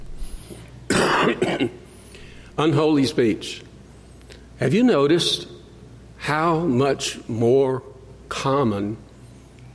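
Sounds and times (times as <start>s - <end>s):
person coughing harshly: 0.9s - 1.8s
speech: 1.2s - 1.8s, 2.6s - 3.7s, 4.6s - 5.6s, 6.2s - 9.0s.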